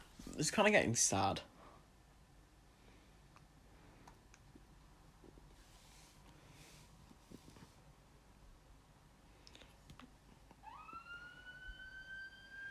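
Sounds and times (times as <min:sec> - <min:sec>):
speech: 0:00.4 - 0:01.5
distant emergency vehicle siren wailing: 0:10.6 - 0:12.6.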